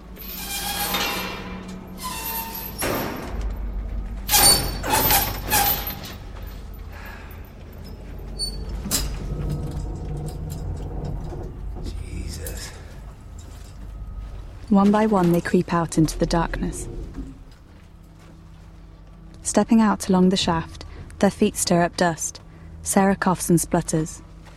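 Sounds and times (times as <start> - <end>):
steady low rumble: 0.0 - 24.5
metal cage door of a mine shaft lift being opened: 0.2 - 3.6, 4.3 - 6.2, 8.4 - 11.5
speech: 14.7 - 17.0, 19.6 - 24.3.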